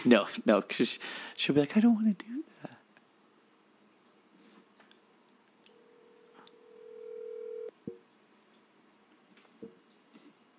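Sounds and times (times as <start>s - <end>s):
speech: 0.0s - 2.7s
faint hiss: 0.0s - 10.5s
steady electronic tone of a phone call being placed: 5.8s - 7.7s.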